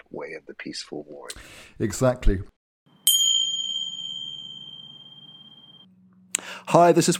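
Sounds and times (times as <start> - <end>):
speech: 0.2 - 2.5, 6.7 - 7.1
bell chime signalling a break: 3.0 - 5.9.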